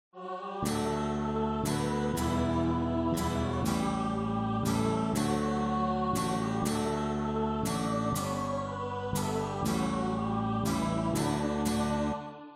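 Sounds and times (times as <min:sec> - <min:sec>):
German children's winter song: 0:00.1 - 0:12.5.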